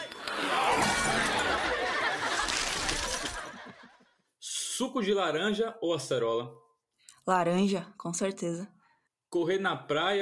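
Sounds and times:
laughter: 0.0 - 4.2
ice cracking and shattering: 0.6 - 3.5
speech: 4.8 - 6.6, 7.2 - 10.1.

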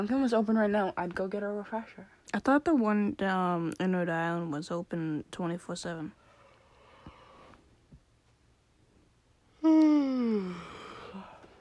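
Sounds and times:
speech: 0.0 - 6.2, 9.6 - 10.7
loud voiced yawn: 9.6 - 11.5.

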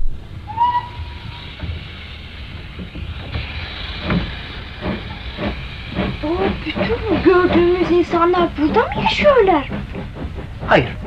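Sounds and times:
steady broadband hiss of a steam locomotive: 0.2 - 11.0
whistle-like tone: 0.5 - 1.4
speech: 7.6 - 9.9, 10.7 - 11.0.

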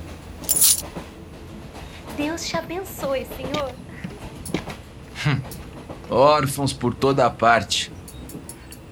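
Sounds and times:
coins jingling as they are handed over: 0.4 - 0.8
speech: 2.2 - 3.8, 5.2 - 7.9.

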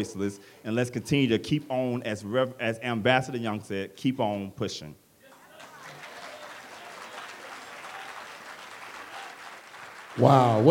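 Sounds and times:
speech: 0.0 - 5.0, 10.2 - 10.6
faint cheers: 5.2 - 9.6
large audience applauding after a speech: 5.3 - 10.6.

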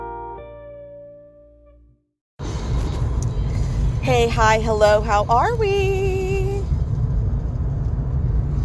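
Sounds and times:
car engine rumble heard from inside the cabin: 2.4 - 8.6
speech: 4.0 - 6.1.

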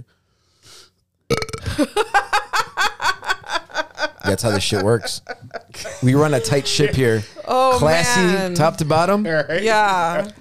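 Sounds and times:
long loud rattling burp: 1.3 - 1.7
laughter: 1.7 - 9.1
speech: 1.8 - 2.4, 4.3 - 10.4.

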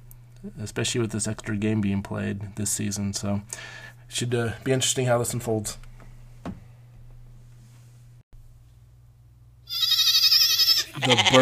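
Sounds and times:
steady low hum: 0.0 - 11.4
speech: 0.4 - 5.9, 11.0 - 11.4
goat bleating with a wavering quavering tone: 9.7 - 11.4.

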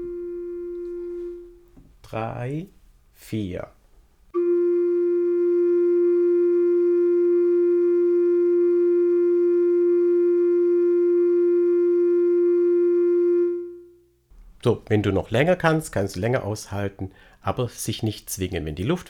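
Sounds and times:
sustained flute-like reference tone on A: 0.0 - 1.6, 4.4 - 14.0
speech: 2.1 - 3.8, 14.6 - 19.0.

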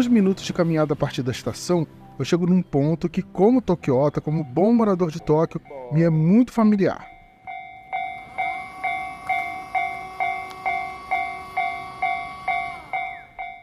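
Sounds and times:
speech: 0.0 - 7.1
level crossing warning bell dinging: 4.2 - 13.6
train passing through a level crossing: 7.0 - 13.6.

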